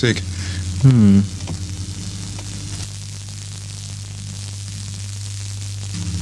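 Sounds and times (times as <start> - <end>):
speech: 0.0 - 1.6
continuous crackling static with low hum on a radio channel: 0.0 - 6.2.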